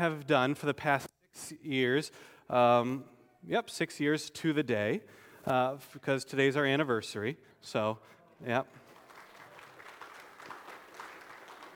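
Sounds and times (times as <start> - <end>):
speech: 0.0 - 8.8
audience applause: 8.8 - 11.7.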